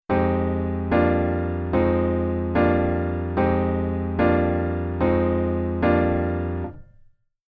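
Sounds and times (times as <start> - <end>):
jazz waltz chord intro: 0.1 - 6.7.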